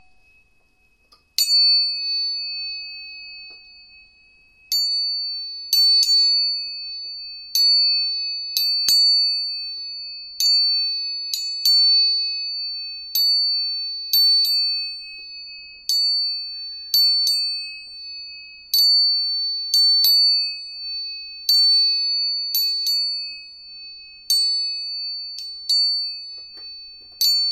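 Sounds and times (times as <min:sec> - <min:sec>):
tuning forks struck, ringing a clear high tone: 0:00.0 - 0:27.5.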